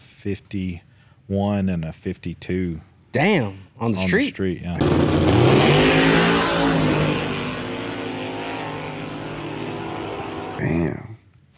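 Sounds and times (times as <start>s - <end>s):
speech: 0.2s - 6.9s
Coyote V8 engine in a Ford F-150 4x4 truck revving: 4.8s - 10.6s.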